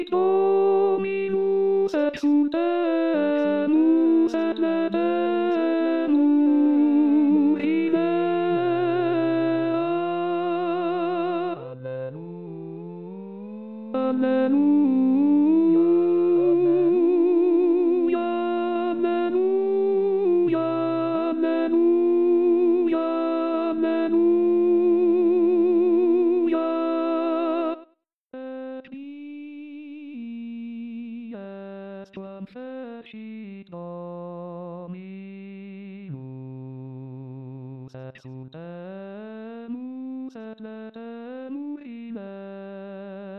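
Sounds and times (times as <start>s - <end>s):
tenors singing: 0.1s - 27.7s.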